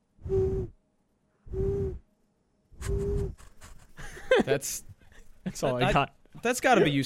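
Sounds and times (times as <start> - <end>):
low breathy whistles made with a curled tongue: 0.2 - 0.8, 1.4 - 2.1, 2.8 - 3.4
speech: 4.5 - 4.9, 5.5 - 7.0.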